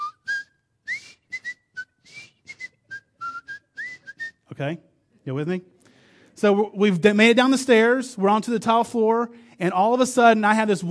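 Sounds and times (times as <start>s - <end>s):
person whistling a TV show theme tune: 0.0s - 4.5s
speech: 4.6s - 5.8s, 6.4s - 10.9s.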